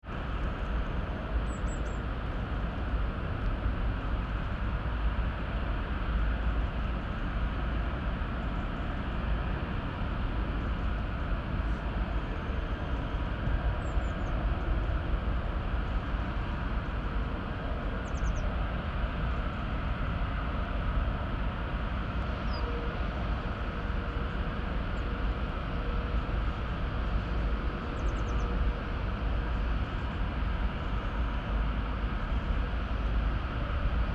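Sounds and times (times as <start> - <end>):
petrochemical plant drones in Immingham: 0.1 - 34.1
birdsong in Immingham: 18.0 - 18.5.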